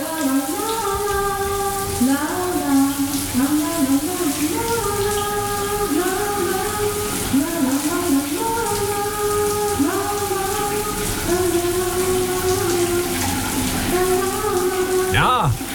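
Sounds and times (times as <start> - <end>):
shower tap running with a steady hiss of water: 0.0 - 15.7
person singing a wandering melody: 15.0 - 15.6.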